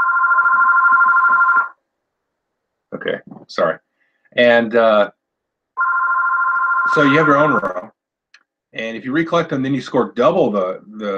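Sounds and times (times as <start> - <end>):
phone ringing from incoming call: 0.0 - 1.8, 5.8 - 7.9
speech: 3.0 - 5.2, 6.8 - 8.0, 8.7 - 11.1.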